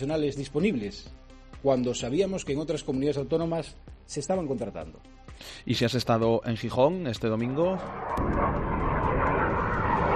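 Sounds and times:
speech: 0.0s - 8.7s
military jet flying at an air show: 7.8s - 10.1s.

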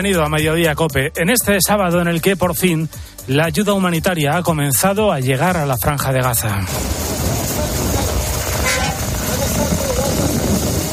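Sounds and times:
speech: 0.0s - 7.1s
dense traffic noise at a border crossing: 6.4s - 10.9s
heavy trucks honking while crossing the Rafah border crossing: 7.8s - 9.7s.

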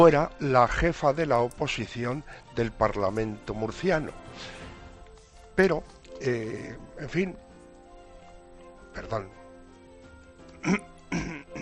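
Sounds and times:
speech: 0.0s - 4.6s, 5.6s - 7.4s, 9.0s - 9.4s, 10.6s - 11.4s
person coughing: 10.6s - 11.6s.

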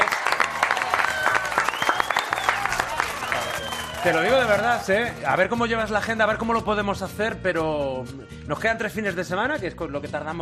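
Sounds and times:
cheers and whoops: 0.0s - 5.2s
studio audience applause: 0.0s - 5.2s
speech: 4.0s - 10.4s.

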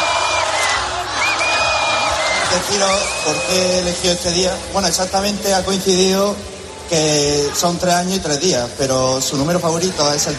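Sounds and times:
large audience clapping: 0.0s - 3.0s
large audience cheering and whooping: 0.0s - 4.0s
speech: 2.5s - 10.3s.

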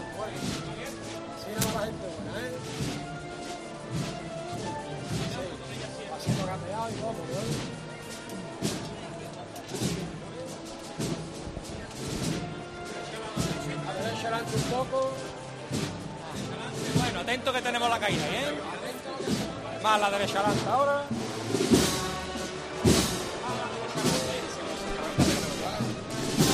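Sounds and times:
brass band playing a slow solemn Holy Week procession march outdoors: 0.0s - 26.5s
faint murmur of a crowd: 0.0s - 26.5s
steady drum strikes: 0.0s - 26.5s.

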